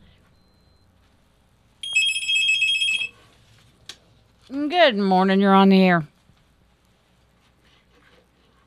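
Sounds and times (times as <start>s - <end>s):
telephone ringing with a bright trilling electronic tone: 1.8s - 3.2s
speech: 4.5s - 6.1s.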